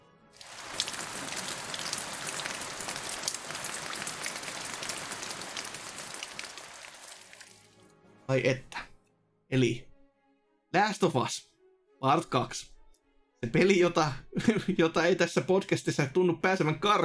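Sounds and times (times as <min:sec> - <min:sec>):
rain pattering on a hard surface: 0:00.4 - 0:07.8
speech: 0:08.3 - 0:08.7, 0:09.5 - 0:09.9, 0:10.8 - 0:12.7, 0:13.4 - 0:17.0
laughter: 0:14.4 - 0:14.8.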